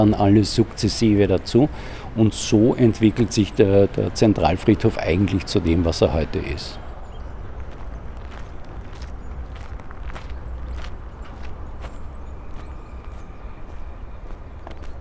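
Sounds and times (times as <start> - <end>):
speech: 0.0 - 6.8
footsteps of people walking along a path through a large city cemetery: 7.0 - 15.0.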